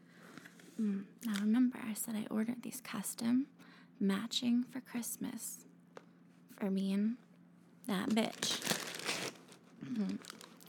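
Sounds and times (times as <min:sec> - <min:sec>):
speech: 0:00.8 - 0:05.7, 0:06.6 - 0:07.2, 0:07.9 - 0:08.6, 0:09.8 - 0:10.4
tissue paper pulled off a box rustling and crinkling: 0:08.3 - 0:09.6, 0:10.2 - 0:10.6.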